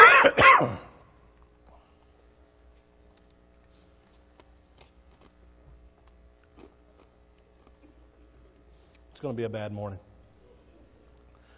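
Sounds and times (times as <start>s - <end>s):
harsh cough: 0.0s - 1.0s
raspy throat clearing: 0.0s - 1.0s
speech: 9.2s - 10.1s.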